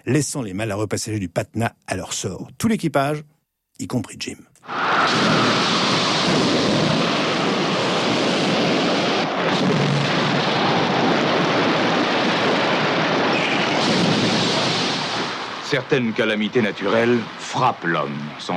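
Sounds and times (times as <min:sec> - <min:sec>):
speech: 0:00.0 - 0:07.0, 0:15.7 - 0:18.5
dense rushing wind of a thunderstorm: 0:04.6 - 0:18.5
churning rain or surf: 0:04.7 - 0:18.5
deep rolling thunder: 0:04.7 - 0:18.5.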